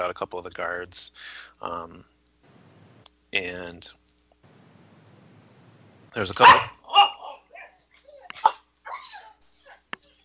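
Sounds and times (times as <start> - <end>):
speech: 0.0 - 2.1, 3.3 - 4.0, 6.1 - 6.8
dog whimpering and yipping: 7.5 - 10.2.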